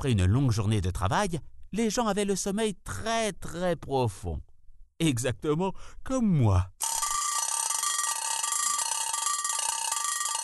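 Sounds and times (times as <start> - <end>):
speech: 0.0 - 6.9
old mechanical alarm clock bell ringing: 6.8 - 10.4.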